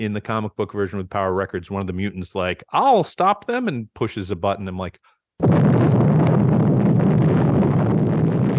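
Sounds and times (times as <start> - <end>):
speech: 0.0 - 6.0
explosion sound effect of a bomb destroying a city on a comic-book read-along record: 5.4 - 8.5.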